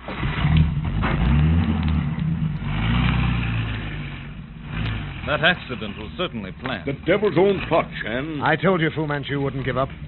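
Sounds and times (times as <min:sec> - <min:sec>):
car engine pulling away: 0:00.0 - 0:10.0
speech: 0:05.3 - 0:10.0.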